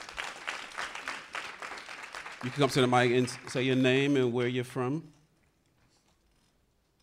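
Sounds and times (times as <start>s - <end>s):
audience applause from a room of people: 0.0s - 3.7s
speech: 2.4s - 5.2s.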